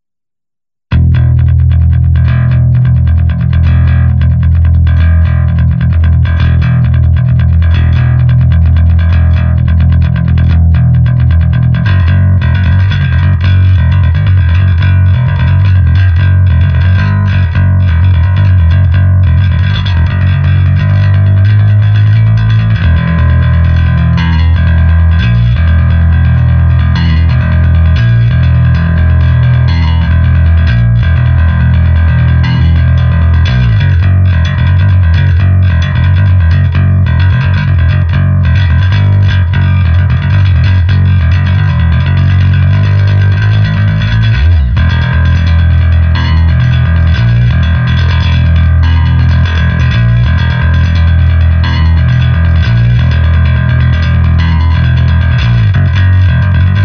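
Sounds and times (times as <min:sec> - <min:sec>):
bass: 0:00.0 - 0:56.8.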